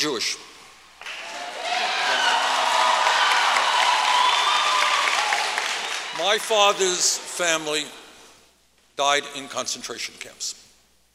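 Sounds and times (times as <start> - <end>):
speech: 0.0 - 0.5, 6.2 - 8.0, 9.0 - 10.6
large crowd clapping: 1.0 - 7.4
whistles from a large crowd: 3.5 - 5.2.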